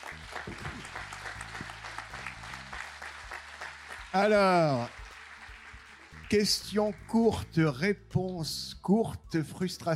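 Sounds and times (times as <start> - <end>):
audience applauding in a large room: 0.0 - 7.6
speech: 4.1 - 5.0, 6.3 - 9.9.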